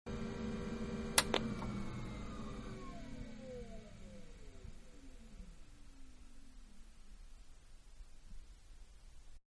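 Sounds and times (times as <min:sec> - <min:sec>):
computer shutting down: 0:00.1 - 0:06.9.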